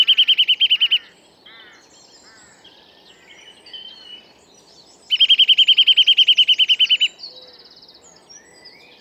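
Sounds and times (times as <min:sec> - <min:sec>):
Eurasian nuthatch Sitta europaea delivering a fast even trill of whistled notes: 0:00.0 - 0:01.0, 0:05.1 - 0:07.1.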